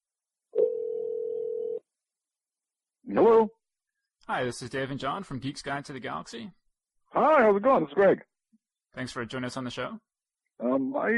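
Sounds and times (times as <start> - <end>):
telephone dial tone while placing a phone call: 0.6 - 1.8
speech: 3.1 - 3.6, 4.3 - 8.3, 9.0 - 11.1.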